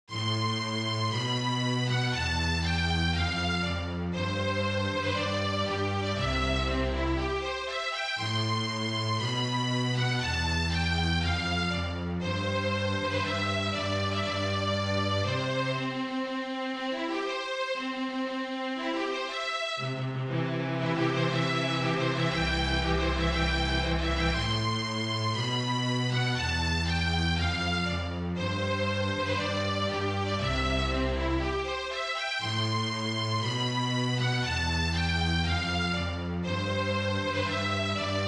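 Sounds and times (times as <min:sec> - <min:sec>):
string quartet playing: 0:00.1 - 0:38.2.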